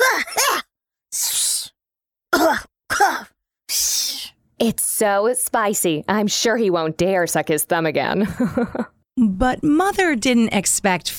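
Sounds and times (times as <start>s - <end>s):
person coughing: 0.0s - 0.7s, 2.3s - 3.4s
speech: 4.6s - 11.1s.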